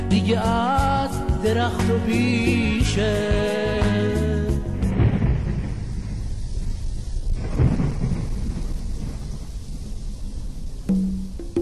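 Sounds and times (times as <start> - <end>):
speech: 0.1 - 4.3
deep rolling thunder: 4.6 - 11.6
steady rain: 4.7 - 11.6.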